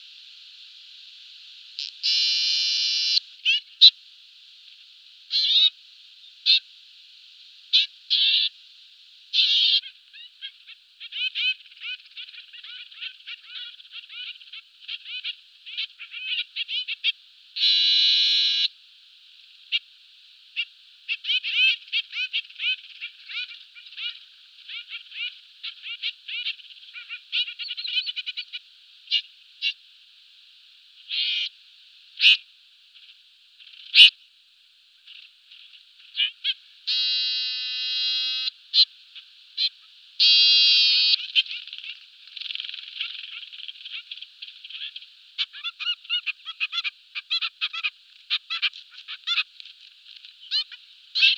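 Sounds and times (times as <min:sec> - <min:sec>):
trumpeter finch calling: 0:01.8 - 0:04.0, 0:05.3 - 0:05.7, 0:06.2 - 0:06.7, 0:07.7 - 0:08.5, 0:09.3 - 0:18.7, 0:20.5 - 0:29.8, 0:31.1 - 0:31.5, 0:32.2 - 0:32.4, 0:33.8 - 0:34.1, 0:36.1 - 0:49.5, 0:50.2 - 0:51.3.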